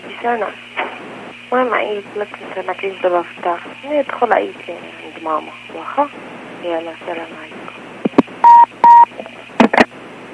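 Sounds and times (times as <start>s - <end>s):
speech: 0.1s - 0.7s, 1.5s - 7.6s
hissy phone-line background: 8.4s - 9.1s
short steady electronic phone-line beeps: 8.4s - 9.1s.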